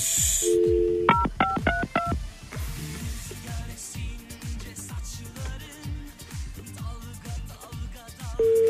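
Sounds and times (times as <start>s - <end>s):
steady rhythmic music-like pattern on the phone line: 0.2s - 2.2s, 7.6s - 8.6s
touch-tone beeps of a phone number being dialed: 0.4s - 2.1s, 8.4s - 8.6s.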